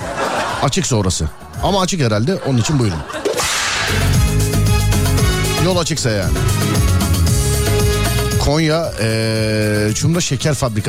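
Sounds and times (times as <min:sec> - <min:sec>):
laughter: 0:00.0 - 0:04.2
speech: 0:00.6 - 0:03.2, 0:05.6 - 0:06.9, 0:08.5 - 0:10.8
loud music with steady regular percussive hits: 0:03.2 - 0:05.6, 0:06.2 - 0:08.5
whip-crack sound effect: 0:03.3 - 0:04.2.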